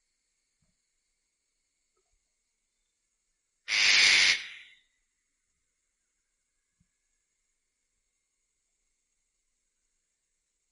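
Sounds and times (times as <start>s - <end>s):
Eclectus parrot hoarse screech: 3.7s - 4.8s.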